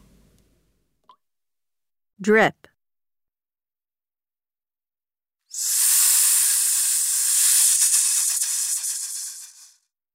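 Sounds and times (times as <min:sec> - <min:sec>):
speech: 0:02.2 - 0:02.7
steady loud bright airy hiss: 0:05.5 - 0:09.8.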